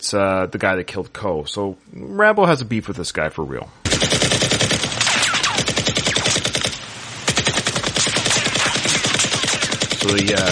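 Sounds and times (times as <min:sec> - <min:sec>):
speech: 0:00.0 - 0:04.4, 0:10.0 - 0:10.4
machine gun firing in an action film shootout: 0:03.8 - 0:10.4.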